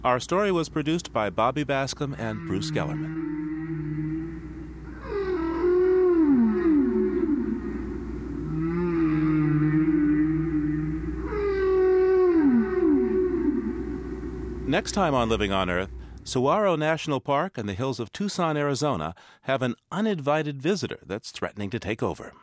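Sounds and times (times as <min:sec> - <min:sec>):
speech: 0:00.0 - 0:03.4, 0:14.7 - 0:22.4
whale song: 0:02.2 - 0:16.3
low steady underwater rumble: 0:07.3 - 0:16.3.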